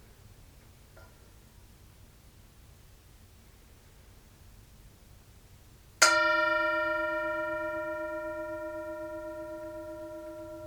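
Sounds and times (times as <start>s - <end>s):
single metallic bell struck and ringing: 6.0s - 10.6s.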